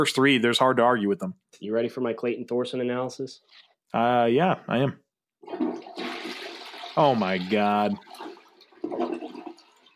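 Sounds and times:
speech: 0.0s - 6.0s, 7.0s - 8.3s
toilet flushing: 5.4s - 9.9s.

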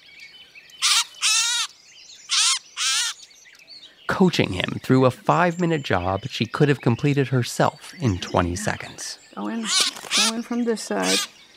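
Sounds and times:
catbird giving harsh raspy calls while being untangled by bird banders: 0.8s - 3.3s, 7.9s - 11.4s
speech: 4.2s - 11.4s.

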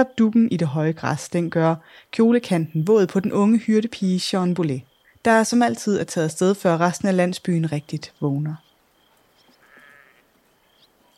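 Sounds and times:
speech: 0.0s - 8.6s
hiss: 0.0s - 11.1s
flock of sheep bleating in a grassy clearing in the early morning: 9.6s - 10.3s.

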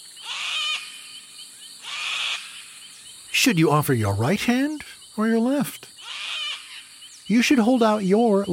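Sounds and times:
sulfur-crested cockatoo screeching: 0.2s - 1.0s, 1.8s - 2.7s, 6.0s - 6.9s
speech: 3.4s - 5.9s, 7.3s - 8.5s.

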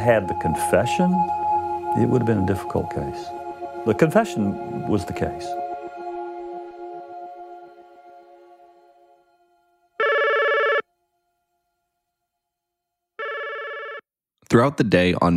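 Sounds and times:
speech: 0.0s - 1.4s, 2.0s - 5.6s, 14.5s - 15.3s
fading musical tone: 0.0s - 10.8s
electronic telephone ringing unanswered: 10.0s - 10.8s, 13.2s - 14.0s.

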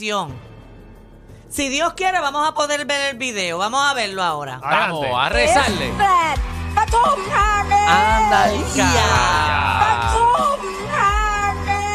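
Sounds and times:
speech: 0.0s - 0.5s, 1.5s - 10.8s
woman screaming: 8.1s - 10.5s.

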